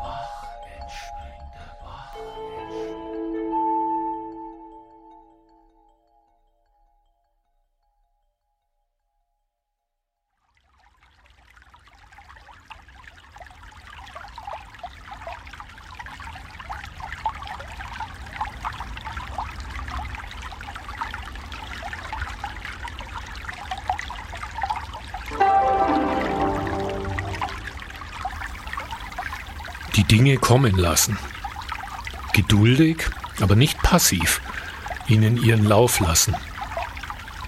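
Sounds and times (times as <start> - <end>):
ringing bell-like tone: 2.1 - 6.4, 25.3 - 28.4
brook trickling and burbling: 10.4 - 37.4
speech: 30.2 - 31.3, 32.4 - 36.5.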